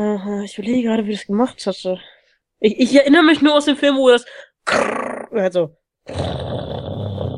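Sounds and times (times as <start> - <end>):
speech: 0.0 - 6.2
dog growling and barking: 6.1 - 7.3.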